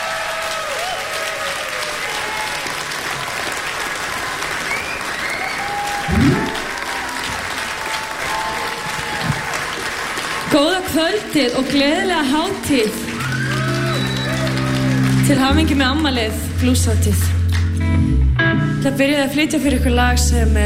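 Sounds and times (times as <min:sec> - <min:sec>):
audience applause for a female singer at a blues festival concert: 0:00.0 - 0:17.7
speech: 0:11.0 - 0:13.1, 0:15.3 - 0:17.4, 0:18.8 - 0:20.6.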